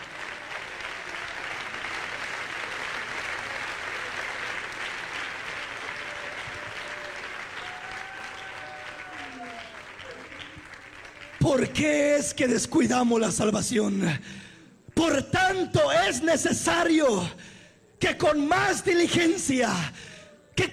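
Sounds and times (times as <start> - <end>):
audience clapping loudly for the King: 0.0 - 12.6
faint voices calling out: 5.8 - 11.4
speech: 11.6 - 14.4, 15.1 - 20.0, 20.6 - 20.7.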